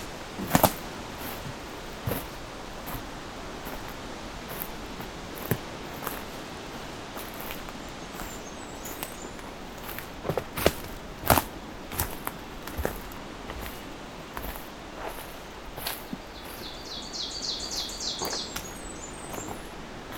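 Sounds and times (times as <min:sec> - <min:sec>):
crunching footsteps in a forest: 0:00.0 - 0:16.9, 0:18.2 - 0:20.1
breezy rustle in a forest: 0:00.0 - 0:20.1
Blackburnian warbler singing in a forest: 0:06.1 - 0:10.2, 0:13.0 - 0:20.1
ovenbird singing in a forest: 0:07.2 - 0:09.9, 0:15.8 - 0:20.1.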